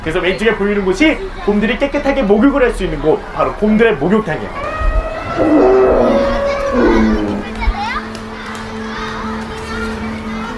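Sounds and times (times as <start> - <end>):
speech: 0.0 - 4.7, 5.4 - 5.6
murmur of many zoo visitors: 0.0 - 10.5
children chattering and calling out at a zoo: 2.4 - 10.5.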